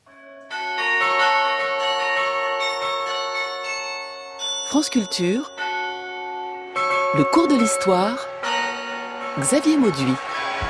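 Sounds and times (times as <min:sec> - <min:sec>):
carillon bells playing in Lyon: 0:00.0 - 0:10.6
speech: 0:04.7 - 0:05.6, 0:07.1 - 0:08.3, 0:09.4 - 0:10.6.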